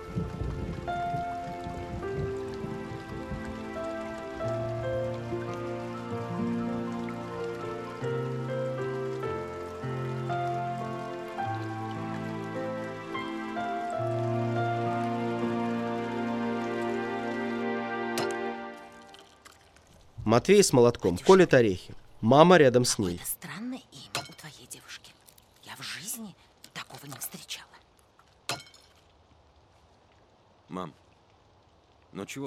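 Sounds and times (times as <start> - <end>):
sustained tonal music notes: 0.0 - 19.2
rain starting to fall: 0.0 - 32.4
speech: 20.3 - 23.4.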